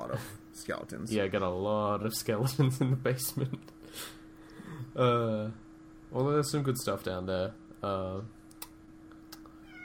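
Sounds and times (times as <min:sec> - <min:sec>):
steady low hum: 0:00.0 - 0:09.8
speech: 0:00.1 - 0:04.2, 0:05.0 - 0:08.4
cat meowing: 0:09.6 - 0:09.8.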